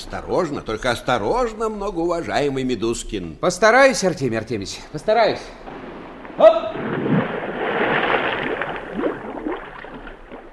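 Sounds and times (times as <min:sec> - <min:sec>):
speech: 0:00.1 - 0:06.6
bubbling of air in water: 0:05.5 - 0:10.5
scuba diver plunging into water: 0:05.6 - 0:10.5.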